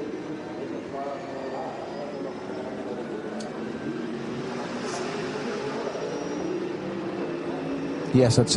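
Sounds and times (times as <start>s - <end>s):
racing car engine droning at low restrained revs: 0.0s - 8.5s
speech: 8.1s - 8.5s.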